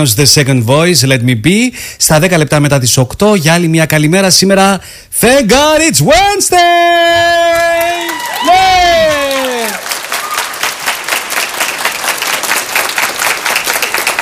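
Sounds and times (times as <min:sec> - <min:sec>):
speech: 0:00.0 - 0:07.7, 0:08.4 - 0:09.2
crowd applauding with many hands clapping: 0:07.5 - 0:14.1
crowd cheering and whooping: 0:07.6 - 0:10.9.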